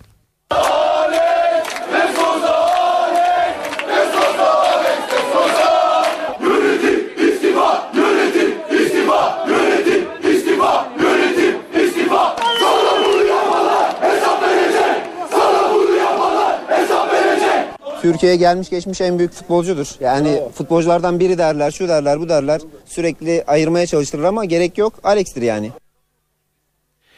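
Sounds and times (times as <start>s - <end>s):
large crowd of football fans chanting outdoors: 0.5s - 18.1s
speech: 18.1s - 25.8s.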